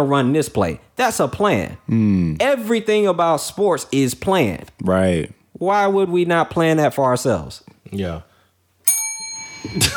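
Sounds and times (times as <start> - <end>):
speech: 0.0 - 8.3, 9.6 - 9.9
bright bell strike with shimmering metallic tone: 8.8 - 9.9.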